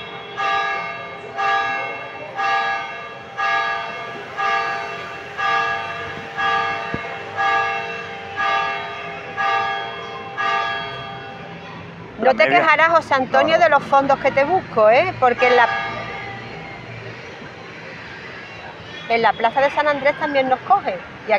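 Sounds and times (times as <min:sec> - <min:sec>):
church bells ringing in a plaza: 0:00.0 - 0:13.8, 0:15.3 - 0:16.9
speech: 0:12.3 - 0:15.8, 0:19.1 - 0:21.3.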